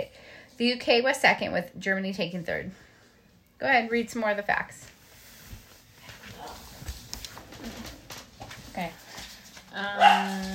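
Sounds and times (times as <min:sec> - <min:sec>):
speech: 0:00.6 - 0:02.8, 0:03.6 - 0:05.0, 0:08.8 - 0:09.0, 0:09.8 - 0:10.5
shuffling: 0:04.5 - 0:10.5
dog barking: 0:10.0 - 0:10.5.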